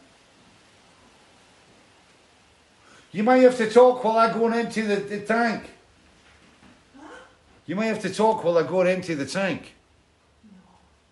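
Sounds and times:
icy rain falling outside: 0:00.0 - 0:11.1
speech: 0:03.1 - 0:05.8, 0:07.7 - 0:09.8.

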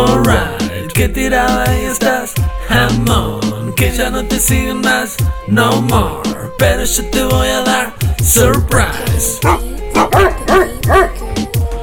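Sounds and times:
speech: 0:00.2 - 0:11.2
dog barking with slight yelping tones: 0:09.4 - 0:11.3.

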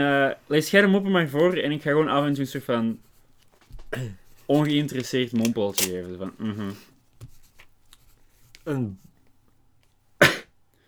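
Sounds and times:
speech: 0:00.0 - 0:03.1, 0:03.9 - 0:06.9, 0:08.7 - 0:09.1
person coughing: 0:03.9 - 0:04.2, 0:10.2 - 0:10.6.

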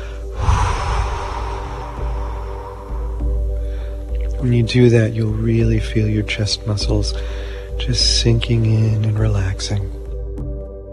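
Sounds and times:
forceful exhale: 0:00.0 - 0:04.2
speech: 0:04.4 - 0:10.0.

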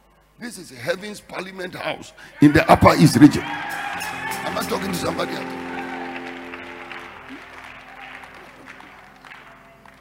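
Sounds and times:
speech: 0:00.4 - 0:05.6
church audience clapping in the Upper East region: 0:03.4 - 0:09.9.

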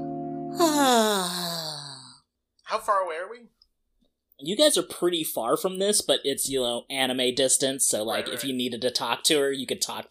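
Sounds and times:
woman yawning: 0:00.6 - 0:02.2
speech: 0:02.8 - 0:03.6, 0:04.4 - 0:10.0.

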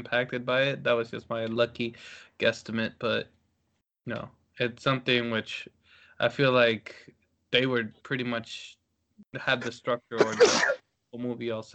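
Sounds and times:
speech: 0:00.0 - 0:03.4, 0:04.0 - 0:11.7
person sneezing: 0:10.2 - 0:10.8.

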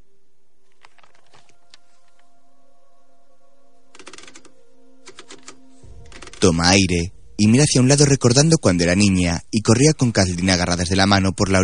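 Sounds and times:
new typewriter keys clacking: 0:04.0 - 0:04.5, 0:05.1 - 0:06.5
speech: 0:06.4 - 0:11.6.

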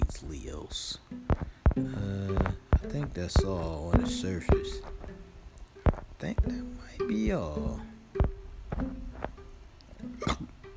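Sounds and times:
speech: 0:00.3 - 0:02.4, 0:03.0 - 0:04.9, 0:06.2 - 0:07.9
loud belch: 0:10.2 - 0:10.5.

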